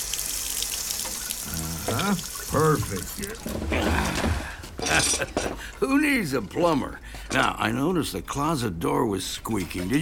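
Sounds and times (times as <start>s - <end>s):
water running from a faucet: 0.0s - 3.6s
speech: 1.8s - 4.3s, 5.0s - 9.9s.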